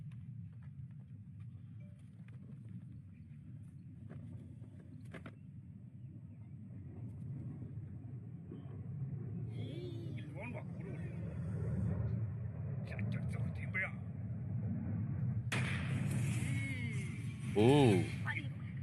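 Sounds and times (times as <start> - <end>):
launched rocket rumble: 0.1 - 18.8
loud rocket explosion: 15.5 - 17.7
speech: 17.6 - 18.2.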